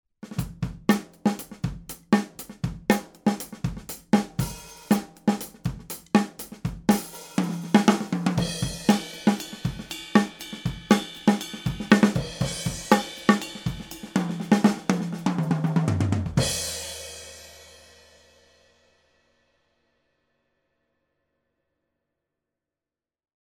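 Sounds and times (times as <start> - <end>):
overhead drum kit: 0.2 - 18.5.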